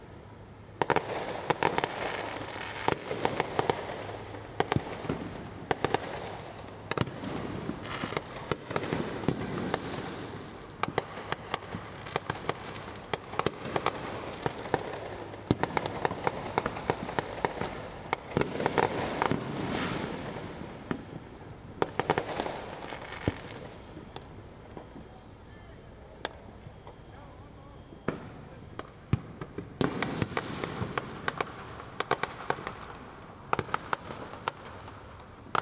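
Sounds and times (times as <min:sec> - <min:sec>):
illegal fireworks crackling and banging across a city neighborhood in Harlem: 0:00.0 - 0:35.6
urban hum: 0:00.0 - 0:35.6
faint voices: 0:24.8 - 0:29.0.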